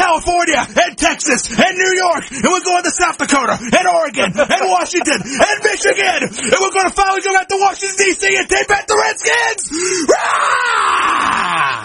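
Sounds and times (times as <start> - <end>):
speech: 0.5 - 11.8
laughter: 2.4 - 7.4
loud excited yell: 3.8 - 11.8.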